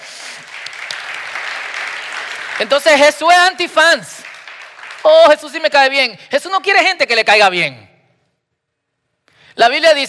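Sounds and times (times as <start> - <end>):
audience applause: 0.0 - 5.4
speech: 2.6 - 4.2, 5.0 - 7.9, 9.6 - 10.0.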